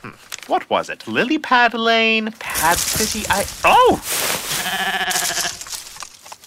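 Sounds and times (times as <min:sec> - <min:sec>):
speech: 0:00.0 - 0:04.5
rustling: 0:02.4 - 0:06.4
goat bleating: 0:04.5 - 0:05.7.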